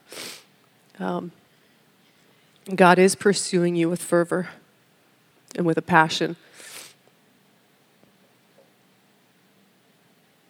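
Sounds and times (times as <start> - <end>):
person sniffling: 0.0 - 0.5, 6.5 - 7.0
speech: 1.0 - 1.4, 2.6 - 4.6, 5.5 - 6.7.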